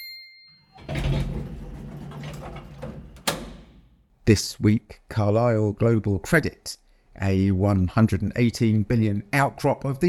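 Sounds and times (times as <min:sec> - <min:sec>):
elevator doors sliding shut with a mechanical rumble: 0:00.8 - 0:04.0
elevator sharp clunk: 0:00.8 - 0:04.0
speech: 0:04.3 - 0:10.0.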